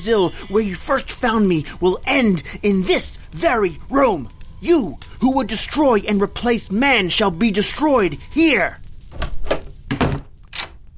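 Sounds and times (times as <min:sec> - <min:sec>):
speech: 0:00.0 - 0:08.8
door shutting with a solid thunk: 0:09.1 - 0:10.8.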